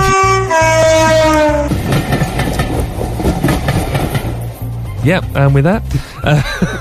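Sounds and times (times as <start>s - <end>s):
train horn blasting a chord of sustained tones: 0.0s - 1.8s
rumble and rhythmic clatter of a passing train: 0.0s - 6.7s
speech: 5.0s - 6.7s
laughter: 5.9s - 6.7s.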